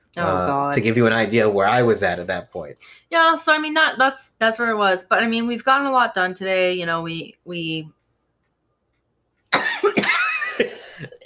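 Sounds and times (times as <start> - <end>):
speech: 0.2 - 8.0
person coughing loudly from an irritated throat: 9.5 - 11.2.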